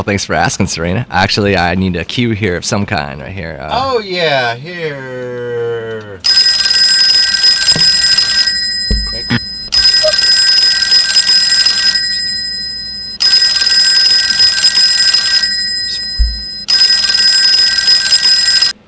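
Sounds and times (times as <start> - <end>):
speech: 0.0 - 6.4
old-style telephone bell ringing: 6.2 - 18.8.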